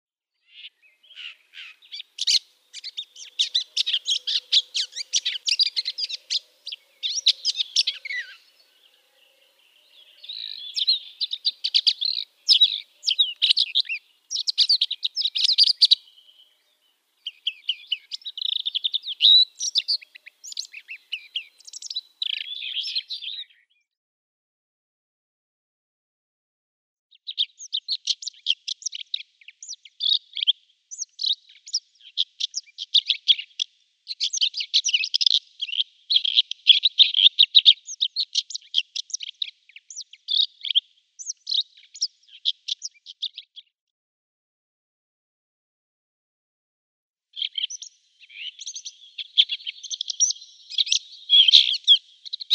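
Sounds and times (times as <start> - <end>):
Red-backed Shrike song: 0.3 - 24.0, 27.1 - 43.8, 47.3 - 52.5.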